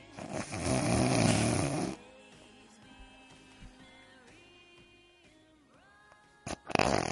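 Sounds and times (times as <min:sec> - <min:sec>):
person imitating a long loud rasping snore: 0:00.0 - 0:02.0, 0:06.5 - 0:07.1.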